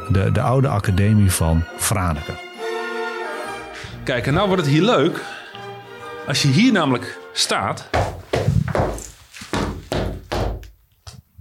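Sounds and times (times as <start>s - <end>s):
speech: 0.1s - 2.4s, 4.0s - 5.4s, 6.3s - 8.0s
foot stamping on solid cellar floor of the old academy in Franeker: 7.9s - 11.3s.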